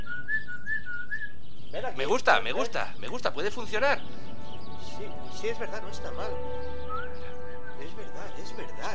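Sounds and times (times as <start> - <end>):
person whistling a call to summon a dog: 0.0 - 1.4, 6.8 - 7.9
speech: 1.8 - 4.2, 4.8 - 8.9.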